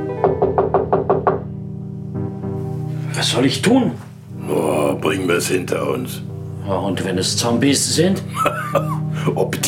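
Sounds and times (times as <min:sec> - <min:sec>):
quick knocking on a door: 0:00.2 - 0:01.6
speech: 0:03.2 - 0:09.6
laughter: 0:08.3 - 0:09.0.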